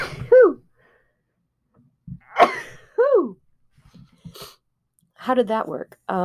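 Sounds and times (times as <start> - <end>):
person sneezing: 0.0 - 0.6, 2.2 - 2.8
speech: 5.3 - 6.2.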